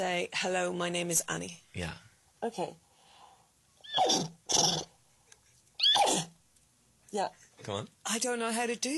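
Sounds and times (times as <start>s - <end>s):
speech: 0.0s - 2.8s, 4.0s - 4.9s, 7.1s - 8.9s
woman imitating a horse neighing: 3.8s - 4.9s, 5.8s - 6.3s.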